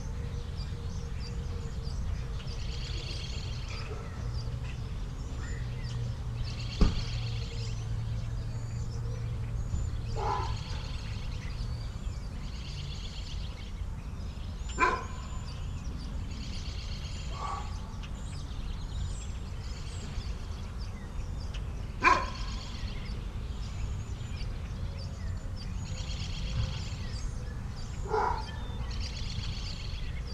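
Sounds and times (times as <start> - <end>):
birds in a suburban morning: 0.0 - 30.3
dogs in a suburban morning: 3.6 - 4.4, 10.1 - 11.1, 14.7 - 15.5, 17.3 - 18.0, 22.0 - 22.7, 28.0 - 29.0.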